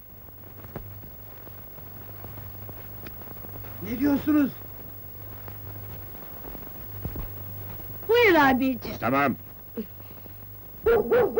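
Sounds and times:
speech: 3.8 - 4.6, 8.4 - 10.0, 11.0 - 11.3
dog barking: 10.8 - 11.3.

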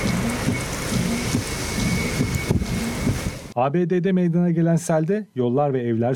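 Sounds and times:
heavy rain downpour during a US storm that brought flooding: 0.0 - 3.6
low thunder rumbling: 0.0 - 3.6
speech: 3.6 - 6.1.

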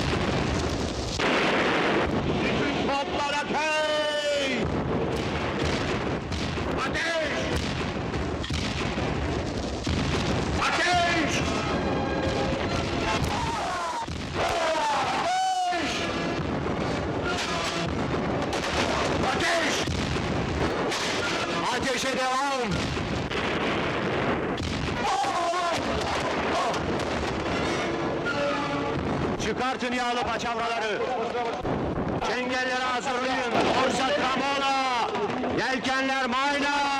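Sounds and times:
cannon fire volley aboard a sailing warship: 0.0 - 30.8, 31.5 - 36.9
people shouting: 12.4 - 16.3, 24.8 - 26.9.

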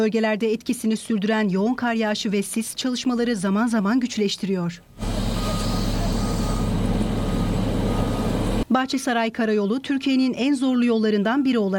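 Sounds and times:
speech: 0.0 - 5.1, 8.8 - 11.7
heavy work machines clearing deep snow from a mountain road, diesel engine drone: 5.0 - 8.7.

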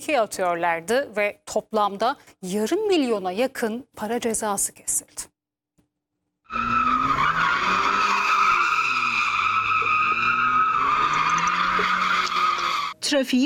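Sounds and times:
speech: 0.0 - 5.3, 13.0 - 13.4
tires squealing as cars drift on city streets: 6.5 - 13.0.

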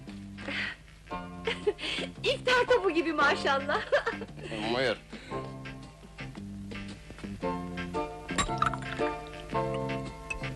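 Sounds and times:
music: 0.0 - 10.5
speech: 1.7 - 5.5
glasses clinking: 8.3 - 10.4
fizzy soda pouring: 8.4 - 9.9.

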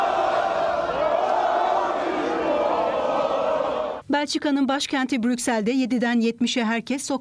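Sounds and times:
celebrating football fans chanting slogans in Berlin Germany: 0.0 - 4.0
speech: 4.1 - 7.2.

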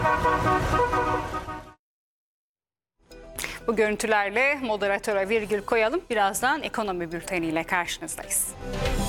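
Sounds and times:
vintage classic car horns honking: 0.0 - 1.7
speech: 3.7 - 9.0.

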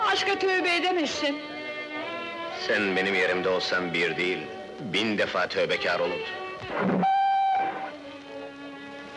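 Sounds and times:
speech: 0.2 - 1.5, 2.6 - 7.2
train whistle blasts before departing station: 7.0 - 7.9.

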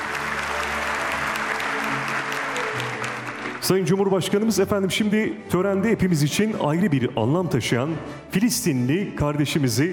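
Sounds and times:
crowd at an award ceremony applauding: 0.0 - 4.5
speech: 3.6 - 9.9.

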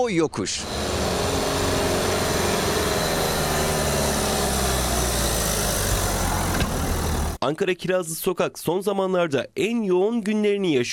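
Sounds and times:
speech: 0.0 - 1.0, 7.4 - 10.9
car engine straining up steep hill: 0.6 - 7.4.

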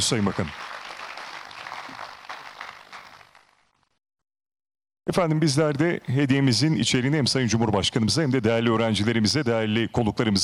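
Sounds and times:
speech: 0.0 - 0.7, 5.0 - 10.4
audience applauding at an opening ceremony: 0.0 - 3.6.

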